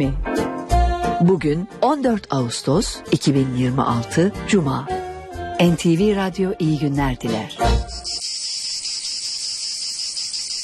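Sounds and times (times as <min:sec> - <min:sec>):
speech: 0:00.0 - 0:00.4, 0:01.2 - 0:05.0, 0:05.6 - 0:08.3
cicadas singing: 0:07.8 - 0:10.6.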